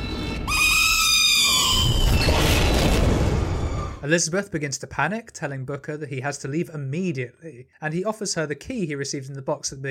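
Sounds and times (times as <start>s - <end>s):
sustained shriek with wavering harmonic tones: 0.0s - 4.0s
broad rumbling crash and roaring noise: 1.6s - 4.0s
speech: 4.1s - 9.9s.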